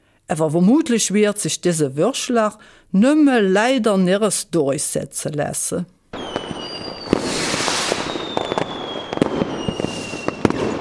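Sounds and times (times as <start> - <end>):
speech: 0.3 - 6.0
New Year's fireworks and firecrackers banging: 6.2 - 10.7
whistling rockets streaking overhead: 6.2 - 10.7.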